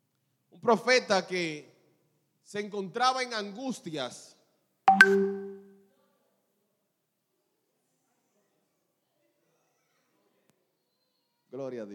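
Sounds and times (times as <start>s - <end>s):
speech: 0.6s - 1.7s, 2.5s - 4.4s, 5.0s - 5.4s, 11.6s - 11.9s
two-note WhatsApp message notification chime on a phone: 4.9s - 5.7s.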